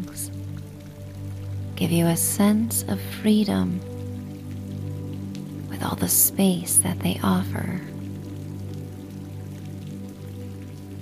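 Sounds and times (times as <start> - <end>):
rain streaming down windows: 0.0 - 11.0
speech: 1.8 - 3.9, 5.8 - 7.9.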